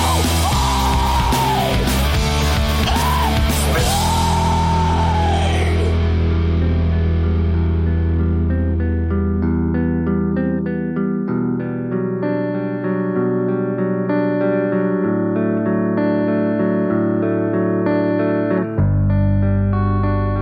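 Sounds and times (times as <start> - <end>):
harsh strained screamed vocals: 0.0 - 6.1
loud distorted rock backing with heavy chords: 0.0 - 20.4.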